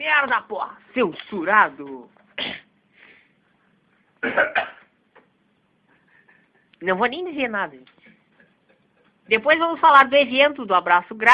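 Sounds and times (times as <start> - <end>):
speech: 0.2 - 2.2, 4.2 - 4.8, 6.8 - 7.9, 9.3 - 11.3
audio operator coughing while working: 2.4 - 2.7, 4.2 - 4.9.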